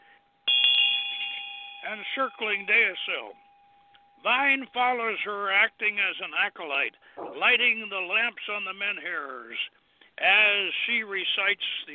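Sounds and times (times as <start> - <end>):
small ritual hand bell ringing: 0.4 - 5.2
speech: 1.9 - 3.4, 4.2 - 11.9.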